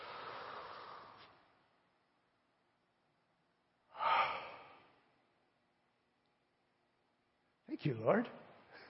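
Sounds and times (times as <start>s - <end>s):
people drawing deep breaths: 0.0s - 1.5s, 3.9s - 5.0s
speech: 7.8s - 8.5s.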